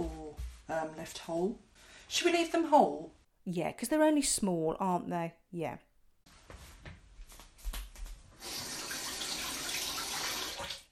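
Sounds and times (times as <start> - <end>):
speech: 0.8 - 5.9
running tap water washing small mushrooms: 8.4 - 10.9.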